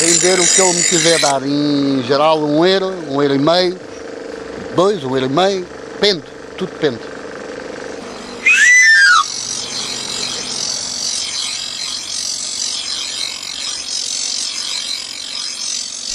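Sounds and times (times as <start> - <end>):
itinerant knife grinder's whistle run: 0.0 - 1.4, 8.1 - 16.1
speech: 0.0 - 3.9, 4.8 - 7.1.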